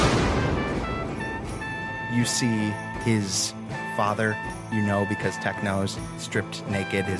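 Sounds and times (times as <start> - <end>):
gunshot blast: 0.0 - 2.1
speech: 2.2 - 7.1.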